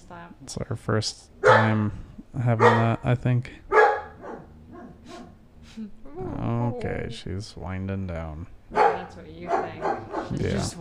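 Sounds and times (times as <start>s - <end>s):
speech: 0.1s - 3.7s, 5.1s - 10.8s
dog barking: 1.4s - 1.9s, 2.5s - 3.1s, 3.7s - 5.4s, 8.7s - 10.7s.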